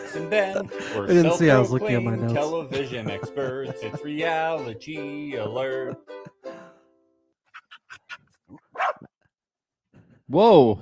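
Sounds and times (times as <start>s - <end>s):
laughter: 0.0s - 6.5s
speech: 0.1s - 6.2s, 10.3s - 10.8s
dog barking and yipping: 7.5s - 9.1s.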